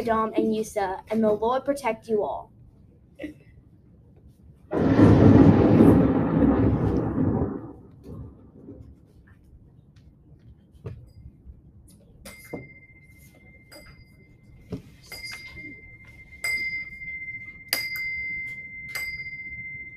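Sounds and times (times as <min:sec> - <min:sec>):
speech: 0:00.0 - 0:02.6, 0:03.2 - 0:03.4
low rumble: 0:02.4 - 0:10.4
thunder crash from a storm: 0:04.7 - 0:09.0.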